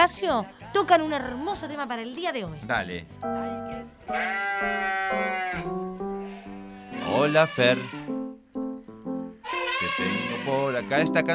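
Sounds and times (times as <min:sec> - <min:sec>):
speech: 0:00.0 - 0:05.9, 0:07.1 - 0:08.0, 0:09.9 - 0:11.3
person imitating a sheep's bleat in a short melody: 0:04.1 - 0:08.1, 0:09.4 - 0:11.3.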